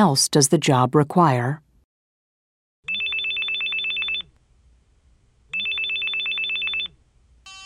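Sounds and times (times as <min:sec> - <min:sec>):
speech: 0:00.0 - 0:01.6
telephone ringing in an electronic trill: 0:02.9 - 0:04.3, 0:05.5 - 0:07.6.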